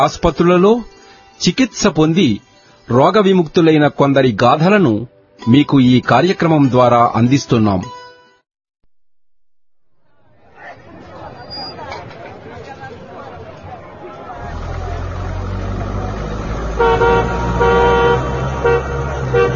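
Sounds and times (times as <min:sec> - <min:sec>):
speech: 0:00.0 - 0:08.0
crowd chattering: 0:10.0 - 0:16.6, 0:17.3 - 0:19.5
arriving car engine rumble: 0:13.4 - 0:19.5
car horn toots: 0:16.6 - 0:19.5.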